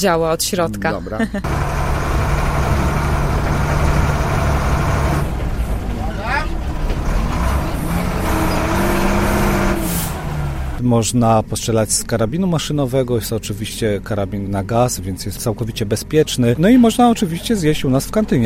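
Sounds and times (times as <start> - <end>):
speech: 0.0 - 1.8, 10.8 - 18.4
large vehicle engine rumbling during a ride: 0.3 - 18.4.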